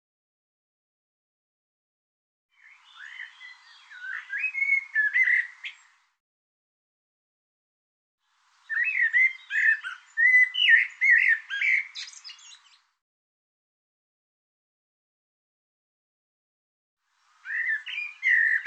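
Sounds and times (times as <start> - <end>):
bird song: 2.5 - 6.2, 8.2 - 13.0, 17.1 - 18.6.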